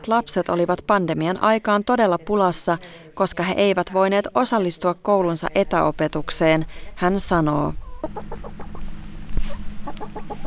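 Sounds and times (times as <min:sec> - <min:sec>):
speech: 0:00.0 - 0:08.7
steady low hum: 0:05.2 - 0:10.4
hens clucking: 0:07.8 - 0:10.4.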